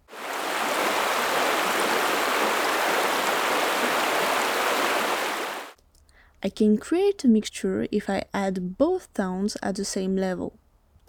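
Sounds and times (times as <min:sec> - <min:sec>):
flowing stream: 0:00.0 - 0:05.8
speech: 0:06.4 - 0:10.6.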